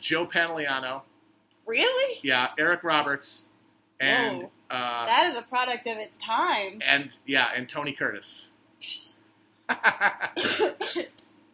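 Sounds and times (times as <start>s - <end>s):
speech: 0.0s - 1.1s, 1.7s - 9.1s, 9.7s - 11.2s
laughter: 4.1s - 4.4s, 9.7s - 11.0s
person coughing harshly: 10.4s - 11.1s.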